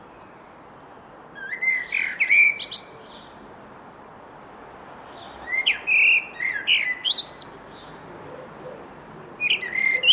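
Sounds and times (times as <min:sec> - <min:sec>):
Eurasian blackbird Turdus merula song: 0:00.0 - 0:03.4, 0:05.0 - 0:08.8, 0:09.4 - 0:10.1.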